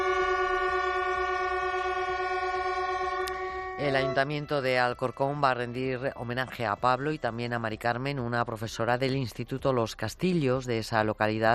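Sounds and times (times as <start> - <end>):
train horns blaring in a chord at a station in tribute: 0.0 - 6.0
speech: 3.8 - 11.5.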